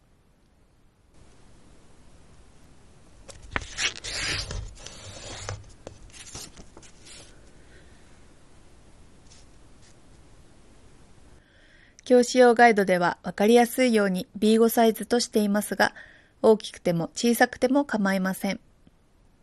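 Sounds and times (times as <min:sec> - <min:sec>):
construction paper rustling and creasing as it is folded in half: 0:03.2 - 0:07.6
speech: 0:12.1 - 0:18.7.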